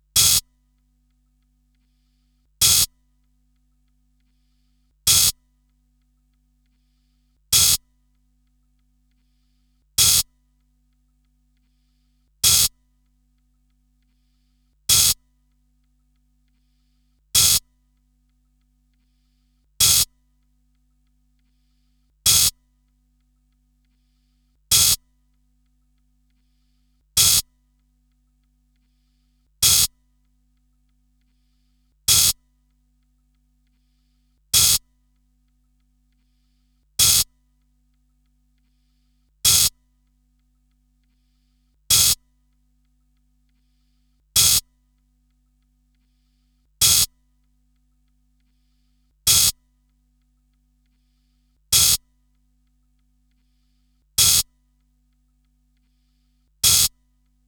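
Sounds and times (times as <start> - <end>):
techno hi-hat: 0.2 - 0.4, 2.6 - 2.9, 5.1 - 5.3, 7.6 - 7.8, 10.0 - 10.2, 12.4 - 12.7, 14.9 - 15.2, 17.4 - 17.6, 19.8 - 20.1, 22.3 - 22.5, 24.7 - 25.0, 27.2 - 27.4, 29.6 - 29.9, 32.1 - 32.4, 34.6 - 34.8, 37.0 - 37.3, 39.5 - 39.7, 41.9 - 42.2, 44.4 - 44.6, 46.8 - 47.1, 49.3 - 49.5, 51.8 - 52.0, 54.2 - 54.4, 56.6 - 56.9.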